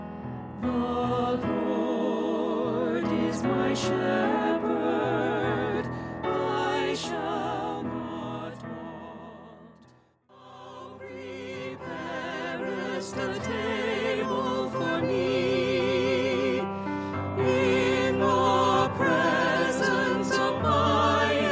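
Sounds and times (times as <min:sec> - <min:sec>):
tenor singing: 0:00.6 - 0:21.5.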